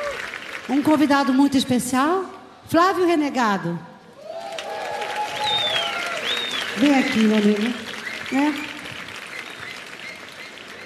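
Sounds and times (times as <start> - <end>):
audience applause for a special guest called up on stage: 0.0 - 0.8, 4.2 - 10.8
speech: 0.7 - 3.9, 6.8 - 8.7.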